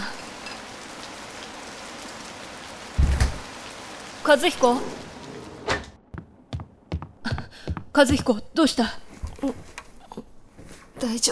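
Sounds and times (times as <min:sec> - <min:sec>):
heavy rain: 0:00.0 - 0:05.7
speech: 0:04.3 - 0:05.0, 0:08.0 - 0:09.7, 0:11.0 - 0:11.2.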